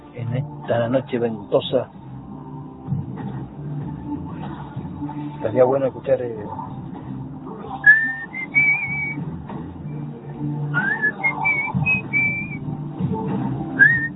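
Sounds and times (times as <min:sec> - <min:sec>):
soft low musical background: 0:00.0 - 0:14.1
speech: 0:00.2 - 0:02.0, 0:05.4 - 0:06.6
person whistling a melody in short high sliding notes: 0:07.8 - 0:09.2, 0:10.8 - 0:12.6, 0:13.8 - 0:14.1.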